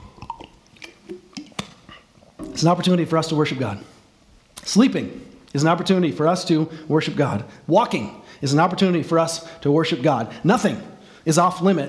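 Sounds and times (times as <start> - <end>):
person drinking water from a glass: 0.0 - 2.6
speech: 2.6 - 4.0, 4.7 - 11.8.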